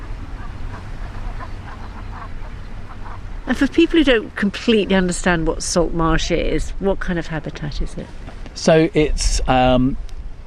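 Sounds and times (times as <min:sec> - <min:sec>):
flock of Brent geese calling on edge of a salt marsh: 0:00.0 - 0:08.4
low rumbling wind or water noise: 0:00.0 - 0:10.4
speech: 0:03.5 - 0:10.1.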